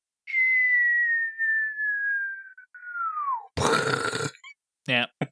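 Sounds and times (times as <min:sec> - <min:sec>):
person whistling a falling tone imitating a dropping bomb: 0:00.2 - 0:03.6
speech: 0:04.9 - 0:05.2.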